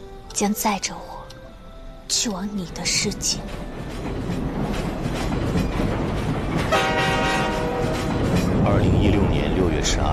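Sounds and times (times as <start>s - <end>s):
speech: 0.4s - 1.2s, 2.1s - 3.8s, 8.7s - 10.1s
train rumbling along the rails with a rolling clatter: 2.1s - 10.1s
loud sustained train horn blast: 6.7s - 8.2s.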